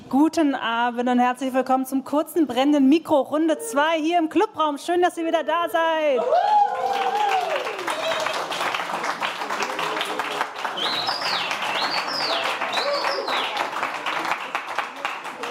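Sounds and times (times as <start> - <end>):
speech: 0.1 - 6.6
voices cheering: 6.2 - 8.6, 10.7 - 14.1
live audience in a club room clapping: 6.2 - 15.4.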